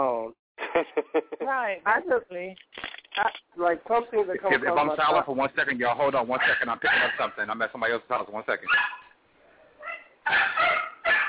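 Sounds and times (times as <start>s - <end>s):
speech: 1.2s - 9.0s
dog barking: 6.4s - 7.3s, 8.7s - 9.2s, 9.8s - 11.2s
dog whining: 9.8s - 11.2s.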